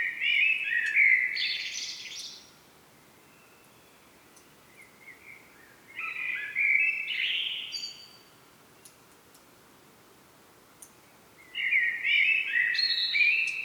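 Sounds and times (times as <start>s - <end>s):
Turdus merula common blackbird fluty warbled song: 0.0s - 9.0s, 11.1s - 13.6s.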